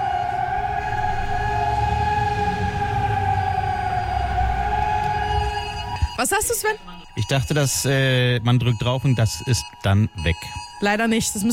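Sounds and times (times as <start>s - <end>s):
low rumble: 0.0s - 7.2s
civil defense warning sirens wailing across the city: 0.0s - 11.5s
speech: 6.2s - 11.5s.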